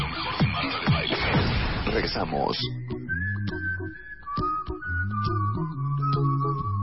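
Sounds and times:
rhythmic percussive hits: 0.0 - 3.6
bouncy bass backing: 0.0 - 6.8
speech: 2.0 - 3.0
whistled melody: 2.6 - 6.8.

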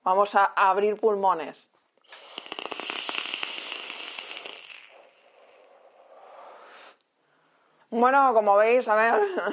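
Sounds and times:
speech: 0.0 - 2.2, 7.9 - 9.5
puff drawn from an electronic vape: 2.0 - 7.0.

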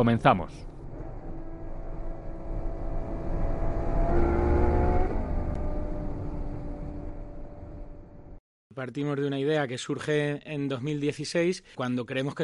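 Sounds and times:
speech: 0.0 - 0.7, 8.8 - 12.4
car engine revving: 0.6 - 8.4.

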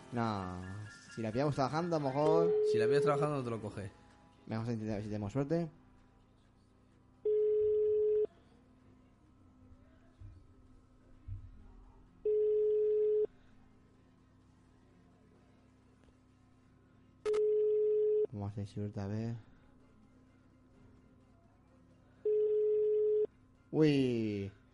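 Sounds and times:
speech: 0.1 - 5.8, 18.6 - 19.5, 23.8 - 24.6
telephone ringback tone on an unanswered call: 2.3 - 3.4, 7.2 - 8.3, 12.3 - 13.3, 17.3 - 18.3, 22.2 - 23.3.

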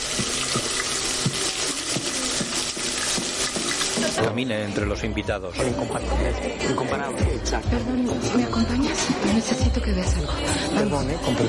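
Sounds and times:
water running from a bathroom sink tap: 0.0 - 4.2
speech: 4.2 - 11.4.

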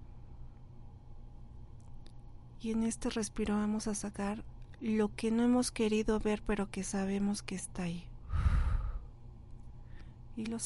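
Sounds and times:
speech: 2.6 - 8.1, 10.4 - 10.6
deep breath in and out: 8.2 - 9.2.

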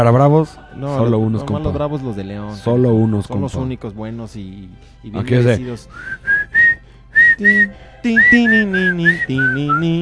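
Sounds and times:
speech: 0.0 - 6.4, 7.4 - 10.0
person whistling short bright notes and a melodic phrase: 5.9 - 10.0.

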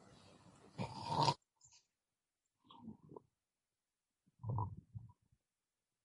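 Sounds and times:
loud harsh raspy snoring: 0.8 - 1.4.

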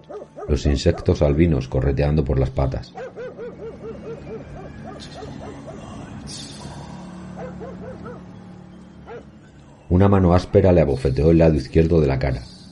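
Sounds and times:
dog barking in short yapping barks: 0.1 - 0.5, 3.0 - 5.8
speech: 0.1 - 3.2, 9.9 - 12.5.

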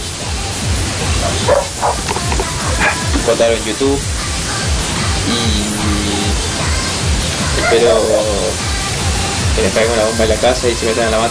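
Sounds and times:
noisy hiss and low rumble: 0.0 - 11.2
dog barking: 1.1 - 3.2, 7.6 - 8.0
speech: 3.3 - 4.2, 5.3 - 5.8, 7.7 - 8.7, 9.6 - 11.2.

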